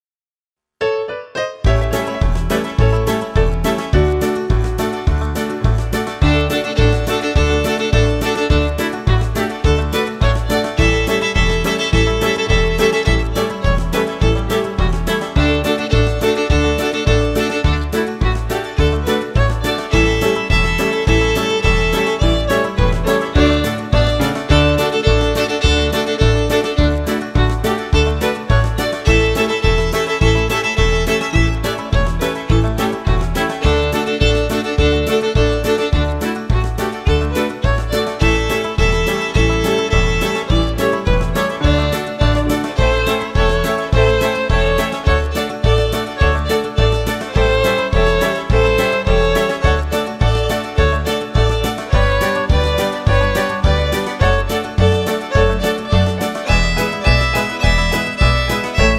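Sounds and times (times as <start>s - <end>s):
double stop shuffle: 1.7s - 58.9s.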